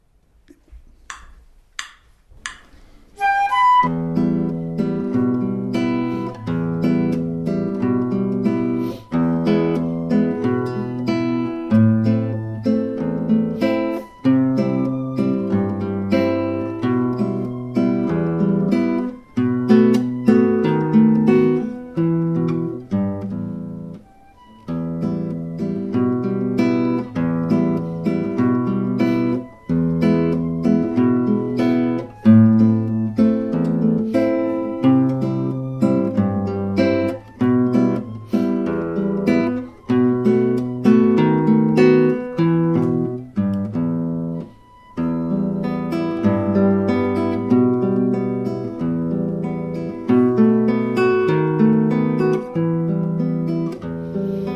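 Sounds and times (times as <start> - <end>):
standard solo guitar: 3.2 - 54.5.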